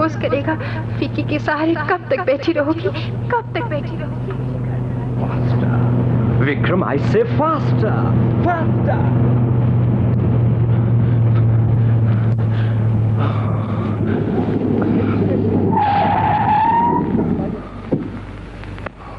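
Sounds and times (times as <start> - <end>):
car engine droning: 0.0 - 19.1
car tires screeching as the car brakes hard and skids: 0.0 - 19.1
speech: 0.1 - 4.5, 6.4 - 9.5.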